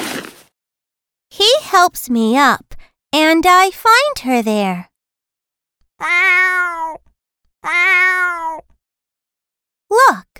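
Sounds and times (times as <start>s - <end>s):
speech: 1.3s - 4.9s, 6.0s - 7.0s, 7.6s - 8.7s, 9.9s - 10.3s
newborn kittens meowing: 6.0s - 7.0s, 7.6s - 8.6s.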